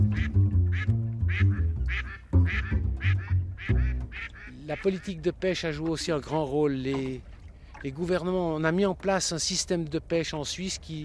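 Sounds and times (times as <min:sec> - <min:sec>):
migratory duck quacking in raspy bursts: 0:00.0 - 0:05.2
speech: 0:04.7 - 0:11.0.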